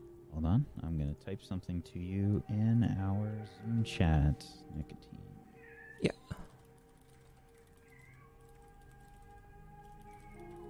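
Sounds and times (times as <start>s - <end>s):
speech: 0.4s - 5.4s
cat yowling: 5.5s - 6.2s, 7.8s - 8.5s.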